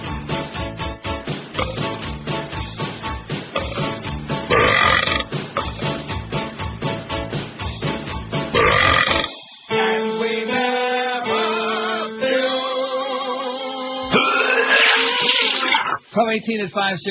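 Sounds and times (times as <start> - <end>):
musical backing: 0.0 - 14.2
loud rhythmic burps: 1.6 - 2.0, 3.5 - 5.8, 8.6 - 9.5, 14.1 - 16.0
speech: 16.3 - 17.0.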